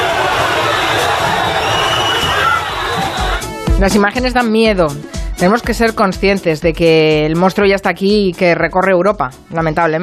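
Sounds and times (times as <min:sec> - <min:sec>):
large crowd of rioters shouting and yelling: 0:00.0 - 0:03.6
speech: 0:03.8 - 0:10.0.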